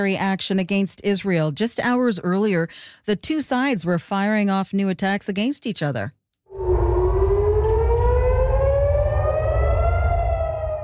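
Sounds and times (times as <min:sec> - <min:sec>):
speech: 0:00.0 - 0:06.2
air raid siren wailing across Jerusalem: 0:06.5 - 0:10.8
deep rumbling background: 0:06.5 - 0:10.8.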